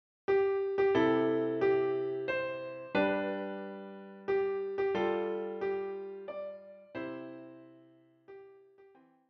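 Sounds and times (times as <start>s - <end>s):
piano played four hands: 0.3s - 9.2s.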